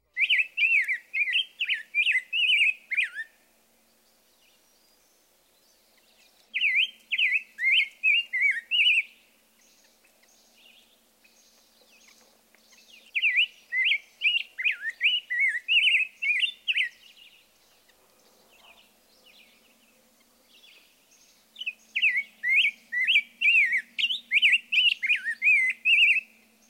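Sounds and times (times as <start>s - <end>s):
rose-breasted grosbeak singing whistled phrases: 0.1s - 3.4s, 6.5s - 9.2s, 13.0s - 17.4s, 21.6s - 26.4s.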